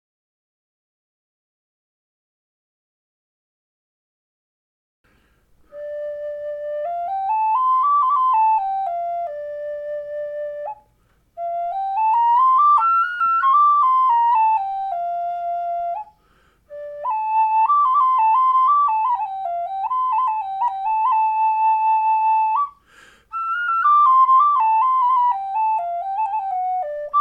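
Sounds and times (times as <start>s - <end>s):
D5 walnut bird Native-style flute note: 5.6s - 27.1s.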